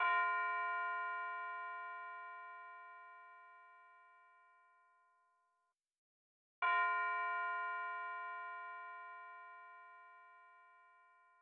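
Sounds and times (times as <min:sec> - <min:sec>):
FM bell at 145 bpm: 0:00.0 - 0:05.6, 0:06.6 - 0:11.4.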